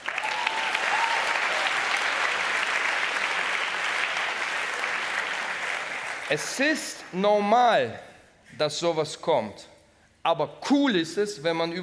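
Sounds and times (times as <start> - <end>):
audience applauding: 0.0 - 6.5
speech: 6.3 - 11.8.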